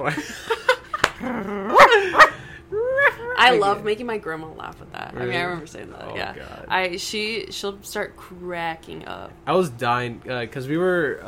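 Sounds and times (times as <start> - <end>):
speech: 0.0 - 0.6, 3.4 - 11.2
person imitating a chihuahua barking: 1.2 - 3.4.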